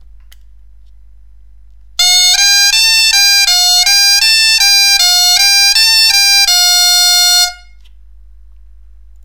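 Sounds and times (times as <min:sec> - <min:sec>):
bombarde playing mi fa sol scale: 0:02.0 - 0:07.8.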